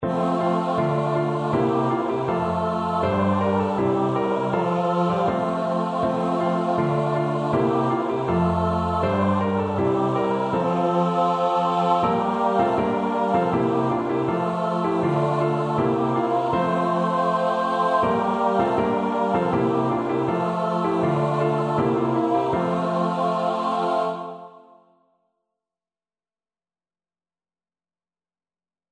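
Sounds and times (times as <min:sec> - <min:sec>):
choir singing: 0:00.0 - 0:24.9.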